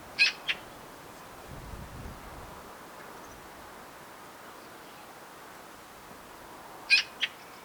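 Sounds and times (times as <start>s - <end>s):
Eurasian magpie Pica pica calling with harsh rasping notes: 0.2s - 0.6s, 6.9s - 7.5s.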